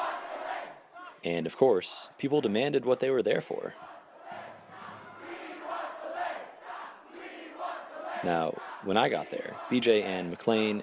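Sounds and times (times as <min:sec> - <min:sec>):
large crowd chanting in unison: 0:00.0 - 0:01.2, 0:03.6 - 0:10.6
speech: 0:01.2 - 0:03.9, 0:08.2 - 0:10.8.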